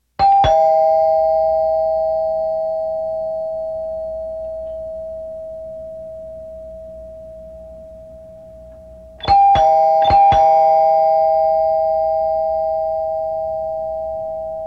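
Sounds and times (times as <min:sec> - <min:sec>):
short doorbell: 0:00.2 - 0:05.2, 0:09.2 - 0:14.6.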